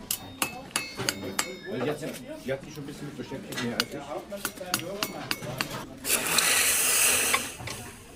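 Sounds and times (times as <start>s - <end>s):
faint voices in a smithy: 0.0s - 8.1s
steam hissing as glowing forged iron is quenched in cold water in a smithy: 6.0s - 8.1s.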